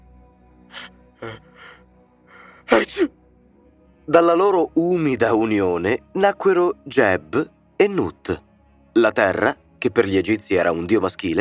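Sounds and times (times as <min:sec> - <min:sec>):
person spitting: 0:00.7 - 0:01.7, 0:02.7 - 0:03.1
person sneezing: 0:00.8 - 0:01.8, 0:02.7 - 0:03.1
speech: 0:01.2 - 0:01.8, 0:02.8 - 0:03.2, 0:04.1 - 0:11.3.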